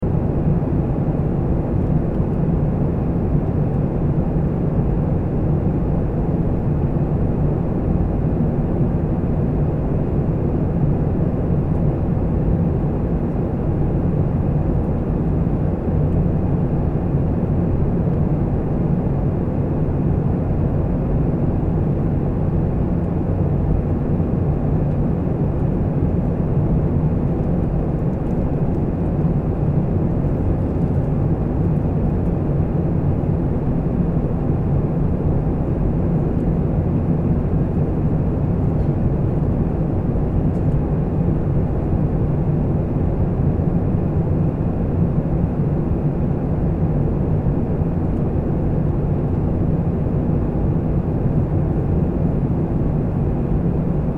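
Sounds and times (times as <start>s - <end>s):
airplane cabin noise: 0.0s - 54.1s.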